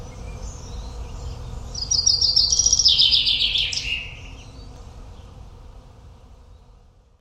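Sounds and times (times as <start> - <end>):
common chaffinch song: 0.0 - 7.1.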